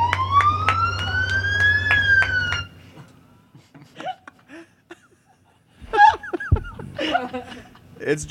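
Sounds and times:
police siren wailing: 0:00.0 - 0:02.8
people chuckling and laughing: 0:03.0 - 0:07.9.

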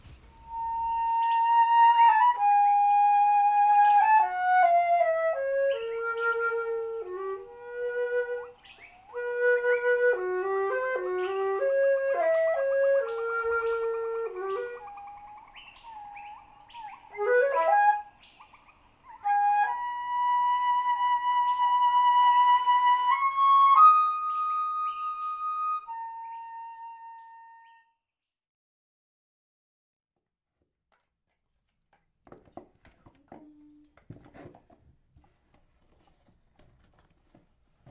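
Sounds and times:
slow mournful solo flute melody as a warm-up: 0:00.0 - 0:18.4, 0:19.0 - 0:28.0.

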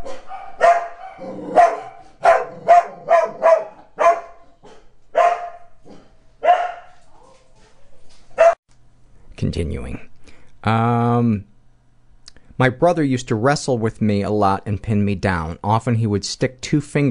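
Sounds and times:
dogs barking loudly: 0:00.0 - 0:07.5, 0:08.3 - 0:08.6
speech: 0:09.4 - 0:11.5, 0:12.6 - 0:17.1.

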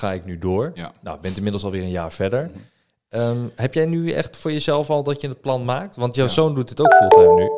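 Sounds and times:
speech: 0:00.0 - 0:07.5
mobile phone ringtone ringing loudly: 0:06.9 - 0:07.5.

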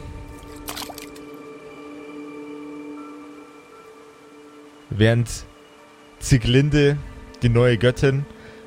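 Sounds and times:
water dripping: 0:00.4 - 0:01.4
hand dipping into pond water: 0:00.6 - 0:01.2
speech: 0:04.9 - 0:05.5, 0:06.2 - 0:08.4.

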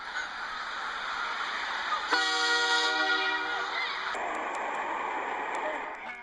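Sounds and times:
train rumbling: 0:00.0 - 0:06.2
train horn blaring: 0:02.1 - 0:04.2.

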